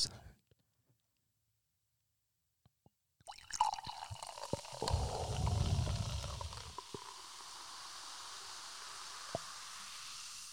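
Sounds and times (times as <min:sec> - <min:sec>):
champagne being poured into a cup: 0:03.2 - 0:10.4
champagne foam fizzing: 0:03.5 - 0:10.4.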